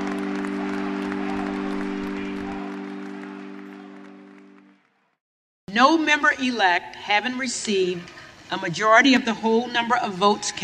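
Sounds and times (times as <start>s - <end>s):
large crowd applauding at funeral: 0.0s - 5.2s
speech: 5.7s - 10.6s.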